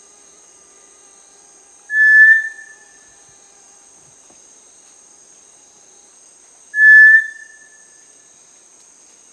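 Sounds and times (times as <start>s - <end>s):
faint high hiss: 0.0s - 9.3s
Cinereous Tinamou Crypturellus cinereus whistles in Peru: 1.9s - 2.7s, 6.8s - 7.6s.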